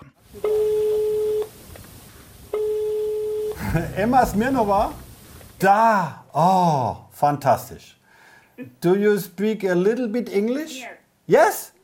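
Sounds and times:
faint telephone line hiss: 0.2 - 9.7
speech: 0.4 - 0.6, 3.7 - 5.0, 5.6 - 8.0, 8.6 - 11.8
telephone ringing tone after dialing heard over the line: 0.4 - 1.5, 2.5 - 3.6.

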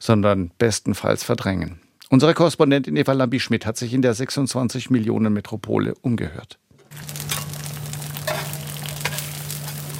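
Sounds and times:
speech: 0.0 - 7.2
Chinese egg pancakes sizzling on a hotplate: 6.9 - 9.9.

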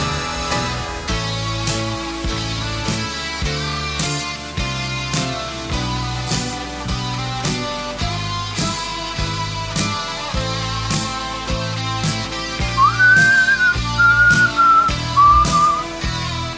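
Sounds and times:
rock music with drum hits and bass: 0.0 - 16.5
person whistling a wavering sliding melody: 12.8 - 16.0.

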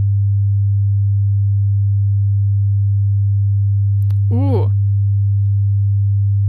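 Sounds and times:
steady low sine wave tone: 0.0 - 6.4
voiced exclamation: 4.3 - 4.7.

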